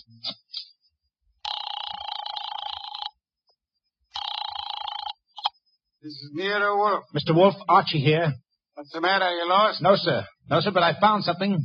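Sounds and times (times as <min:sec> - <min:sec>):
speech: 0:00.0 - 0:00.4, 0:06.0 - 0:11.6
office telephone ringing with electronic trill: 0:01.4 - 0:03.2, 0:04.1 - 0:05.6.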